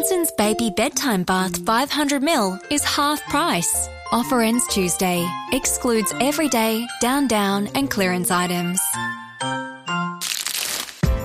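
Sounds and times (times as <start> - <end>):
speech: 0.0 - 9.0
chocolate truffle wrapper crinkling as it is unwrapped: 10.2 - 11.1.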